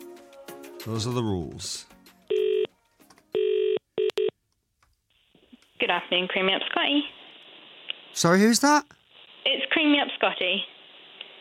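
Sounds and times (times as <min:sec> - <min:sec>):
speech: 0:00.8 - 0:02.0, 0:05.9 - 0:07.2, 0:08.1 - 0:10.7
phone line buzzy electronic ringing tones: 0:02.3 - 0:02.7, 0:03.3 - 0:04.3.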